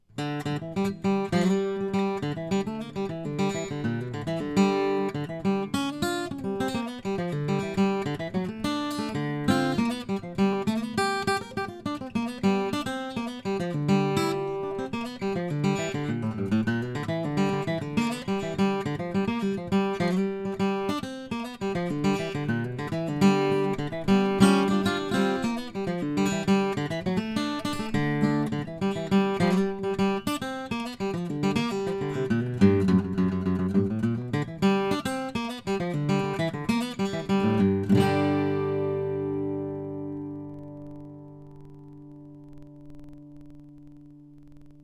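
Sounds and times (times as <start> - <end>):
maple guitar: 0.0 - 44.8.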